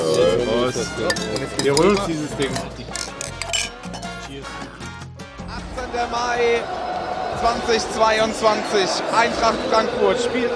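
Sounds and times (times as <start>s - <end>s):
glasses clinking in a toast: 0.0s - 4.3s
speech: 0.7s - 2.9s, 6.0s - 6.8s, 7.4s - 10.5s.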